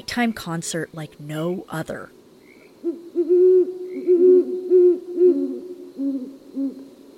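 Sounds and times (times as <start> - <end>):
speech: 0.0 - 2.2
female and male great horned owls hooting in a courtship duet at night: 2.8 - 6.8.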